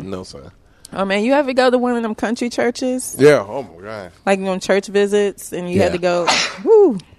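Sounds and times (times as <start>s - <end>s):
speech: 0.0s - 7.1s
drawn-out rising and falling vocal exclamation: 5.8s - 7.1s
person sneezing: 5.9s - 6.7s.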